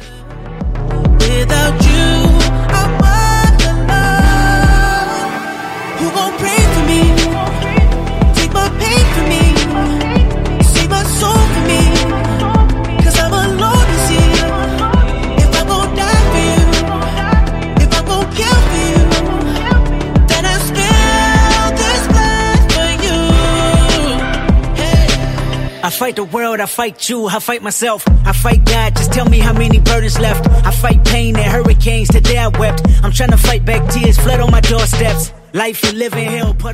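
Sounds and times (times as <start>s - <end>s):
film soundtrack song with driving beat and heavy bass: 0.0s - 36.7s
speech: 26.3s - 36.7s.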